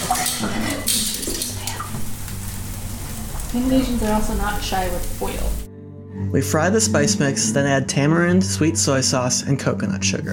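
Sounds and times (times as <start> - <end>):
metal utensils and crockery clinking while washed: 0.0 - 2.0
running water: 0.0 - 5.7
speech: 3.6 - 5.6, 6.2 - 10.3.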